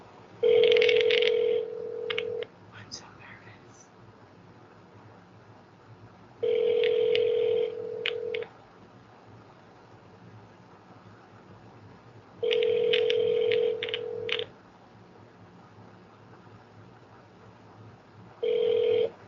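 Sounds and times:
telephone ringback tone on a call dialled with star 67: 0:00.4 - 0:02.4, 0:06.4 - 0:08.5, 0:12.4 - 0:14.5, 0:18.4 - 0:19.2.

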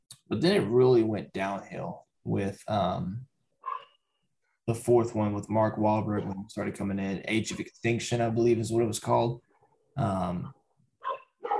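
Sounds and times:
speech: 0:00.3 - 0:03.3, 0:04.7 - 0:10.6
dog barking: 0:03.6 - 0:04.0, 0:11.0 - 0:11.5.

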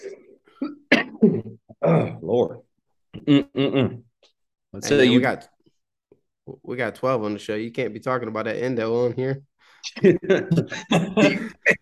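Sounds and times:
harsh throaty coughing: 0:00.6 - 0:02.2, 0:10.5 - 0:11.7
speech: 0:01.8 - 0:02.6, 0:03.2 - 0:04.0, 0:04.7 - 0:05.5, 0:06.5 - 0:11.7.

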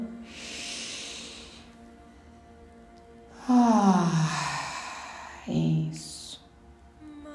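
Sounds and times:
person drawing in a slow airy breath: 0:00.2 - 0:01.8, 0:03.3 - 0:05.5
person letting out a long voiced sigh: 0:00.3 - 0:01.7, 0:03.4 - 0:05.5.

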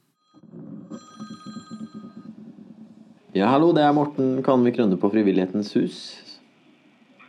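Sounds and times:
telephone ringing with a trilling bell: 0:00.0 - 0:04.3
low hum: 0:00.4 - 0:05.0
speech: 0:03.4 - 0:06.3.

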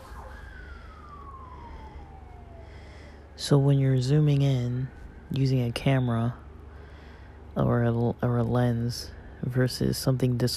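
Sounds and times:
emergency vehicle siren wailing: 0:00.0 - 0:07.5
low traffic rumble: 0:00.0 - 0:10.5
speech: 0:03.4 - 0:06.4, 0:07.6 - 0:10.5.

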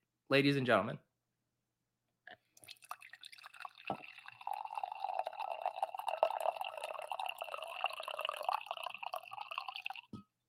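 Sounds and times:
speech: 0:00.3 - 0:01.1
coffee pouring into a cup: 0:02.6 - 0:10.2.

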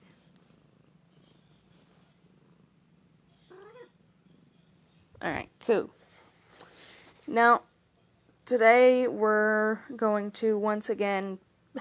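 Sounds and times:
cat purring: 0:00.0 - 0:06.4
speech: 0:05.2 - 0:06.0, 0:07.3 - 0:07.7, 0:08.5 - 0:11.8.

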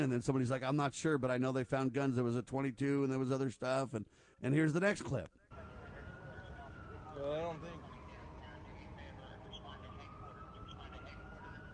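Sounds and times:
speech: 0:00.0 - 0:05.4, 0:07.2 - 0:07.9
city traffic noise: 0:05.5 - 0:11.7
police siren wailing in the city: 0:05.5 - 0:11.7.

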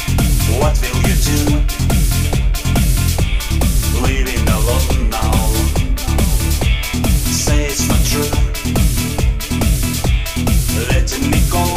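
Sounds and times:
loud music with pounding beat at a wedding party: 0:00.0 - 0:11.7
voices at a wedding party: 0:03.5 - 0:08.5.

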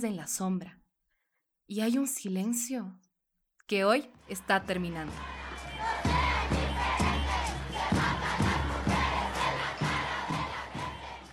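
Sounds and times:
speech: 0:00.0 - 0:00.8, 0:01.7 - 0:03.1, 0:03.7 - 0:05.4
large crowd at a street march chanting in unison: 0:04.3 - 0:11.3.

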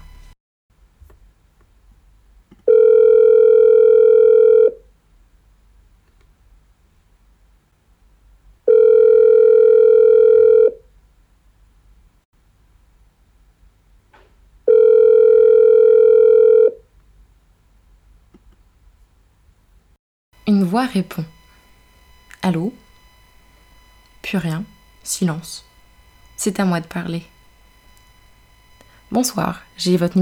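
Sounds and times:
telephone ringback tone while calling: 0:00.0 - 0:00.3, 0:02.7 - 0:04.8, 0:08.7 - 0:10.8, 0:14.7 - 0:16.8, 0:20.4 - 0:30.2
speech: 0:20.7 - 0:21.4, 0:22.4 - 0:22.8, 0:24.2 - 0:25.7, 0:26.4 - 0:27.3, 0:29.1 - 0:30.2.

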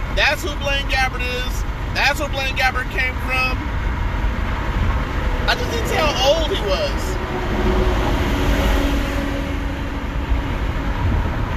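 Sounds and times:
car moving at speed through traffic heard from inside the cabin: 0:00.0 - 0:11.5
speech: 0:00.2 - 0:03.8, 0:05.5 - 0:08.1.

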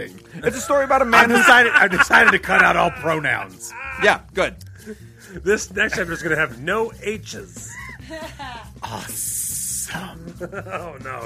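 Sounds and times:
speech: 0:00.0 - 0:11.2
laughter: 0:00.3 - 0:04.2, 0:05.7 - 0:06.6, 0:07.6 - 0:08.8, 0:10.1 - 0:11.2
person hissing like a snake: 0:02.9 - 0:04.2.

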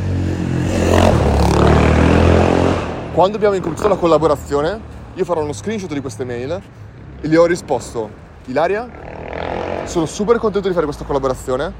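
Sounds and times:
motorcycle passing by: 0:00.0 - 0:04.2, 0:08.6 - 0:10.5
speech: 0:03.2 - 0:09.2, 0:09.8 - 0:11.7.

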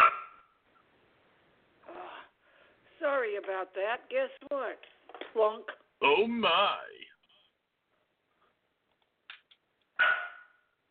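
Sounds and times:
dog barking and yipping: 0:00.0 - 0:00.6, 0:10.0 - 0:10.6
speech: 0:03.4 - 0:07.0.

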